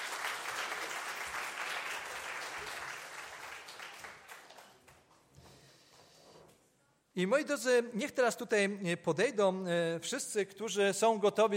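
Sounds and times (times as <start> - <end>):
crowd applauding with dense clapping: 0.0 - 5.2
speech: 7.2 - 11.5.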